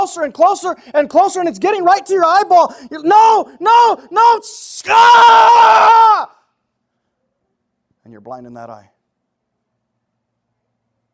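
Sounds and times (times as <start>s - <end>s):
speech: 0.0s - 6.3s, 8.1s - 9.0s
person screaming in agony: 3.1s - 6.4s.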